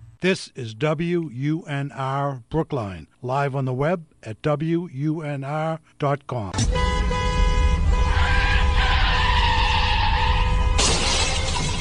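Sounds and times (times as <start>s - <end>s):
speech: 0.2s - 7.0s
car horn blaring: 6.6s - 11.2s
car tires screeching in a skid: 7.2s - 11.5s
car crash: 7.7s - 11.7s
glass shattering in a car crash: 10.8s - 11.7s.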